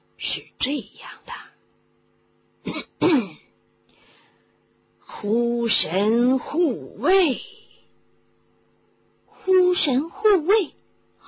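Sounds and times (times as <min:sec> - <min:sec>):
speech: 0:00.2 - 0:01.4, 0:05.2 - 0:07.6, 0:09.7 - 0:10.8
person clearing throat: 0:02.6 - 0:03.5.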